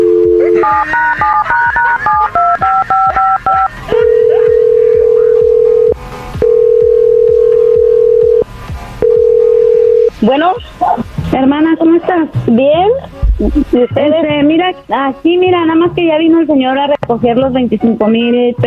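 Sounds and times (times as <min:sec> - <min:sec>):
telephone keypad tone beeps: 0:00.0 - 0:08.4, 0:09.0 - 0:10.1
speech: 0:11.4 - 0:18.6.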